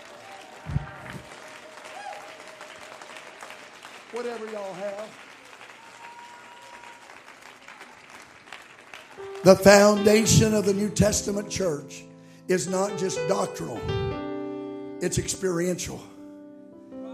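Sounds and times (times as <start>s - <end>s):
audience clapping hands: 0.0s - 10.8s
speech: 4.1s - 5.2s, 9.4s - 14.2s, 15.0s - 16.1s.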